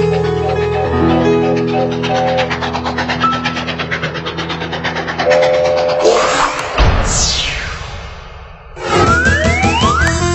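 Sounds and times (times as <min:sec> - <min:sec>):
train rumble: 0:00.2 - 0:07.3
whistle-like tones: 0:08.9 - 0:10.1.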